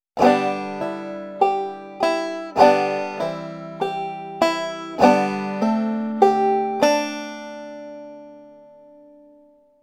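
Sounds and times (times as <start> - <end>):
bouncing chord: 0.2 - 8.5.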